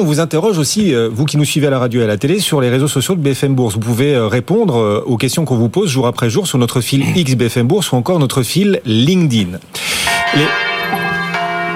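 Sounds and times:
speech: 0.0s - 10.7s
church bells ringing a few days before Easter: 10.0s - 11.7s.

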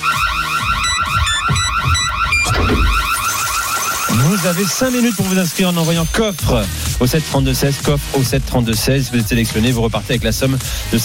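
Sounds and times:
bright beeps: 0.0s - 6.4s
radio contest electronic alert jingle with warbling siren-like tone: 0.0s - 6.4s
speech: 4.4s - 11.0s.

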